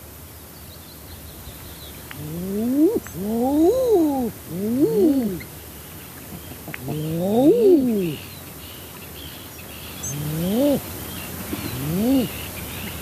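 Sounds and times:
faint higher-pitched bird calls: 1.4s - 13.0s
common eider drakes giving courtship calls: 2.2s - 5.5s, 6.3s - 8.2s, 10.0s - 10.9s, 11.5s - 12.5s.

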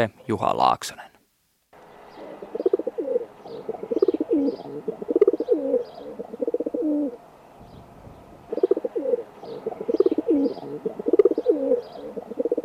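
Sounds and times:
speech: 0.0s - 1.1s
faint small birds chirping: 1.8s - 12.6s
feral pigeons cooing in low throaty phrases: 2.0s - 7.4s, 8.2s - 12.6s.

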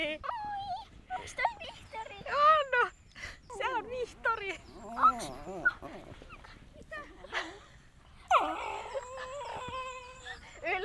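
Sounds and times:
several dogs whimpering and whining: 0.2s - 2.1s, 3.6s - 7.4s, 8.1s - 10.7s
dogs yipping and barking: 4.7s - 6.7s, 8.3s - 10.6s.

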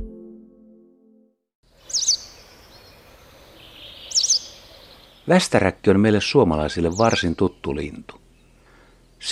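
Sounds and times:
White wagtail giving high sharp twittering calls: 1.7s - 5.4s, 6.7s - 9.2s.

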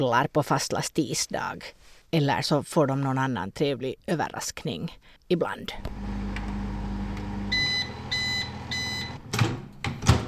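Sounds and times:
speech: 0.0s - 6.2s
microwave oven reheating food in a plastic container: 5.9s - 9.3s
microwave oven electronic beeps: 7.5s - 9.2s.

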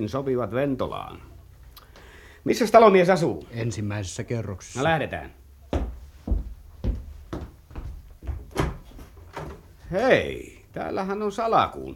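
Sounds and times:
speech: 0.0s - 1.3s, 2.4s - 5.4s, 9.9s - 11.9s
solid wooden clunks and thuds: 5.7s - 9.8s
door opening: 8.2s - 9.9s.

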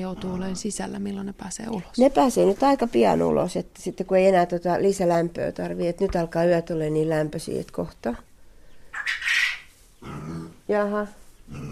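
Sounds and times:
speech: 0.0s - 8.3s, 10.7s - 11.7s
chicken squawking and clucking: 8.9s - 9.8s.

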